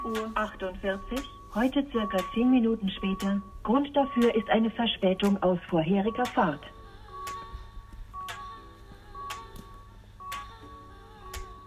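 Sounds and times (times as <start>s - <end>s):
railway level crossing warning signal chiming: 0.0s - 6.8s
faint hum: 0.0s - 11.6s
speech: 0.1s - 6.8s.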